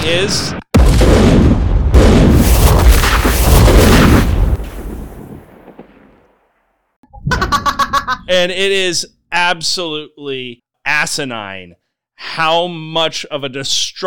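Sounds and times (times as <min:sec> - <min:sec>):
speech: 0:00.0 - 0:00.6, 0:08.3 - 0:14.0
chain reaction of explosions in a video game: 0:00.0 - 0:06.5.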